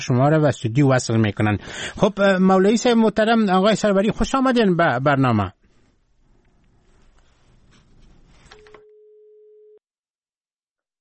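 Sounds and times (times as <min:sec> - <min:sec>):
speech: 0:00.0 - 0:05.6
noisy crackling phone line: 0:08.3 - 0:09.8
steady electronic telephone busy tone after dropped call: 0:08.5 - 0:09.8.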